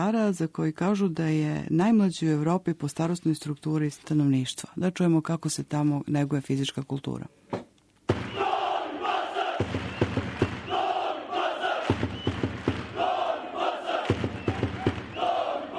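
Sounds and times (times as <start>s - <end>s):
speech: 0.0s - 7.5s
large crowd of sports fans chanting in unison in Novi Pazar: 8.2s - 15.7s.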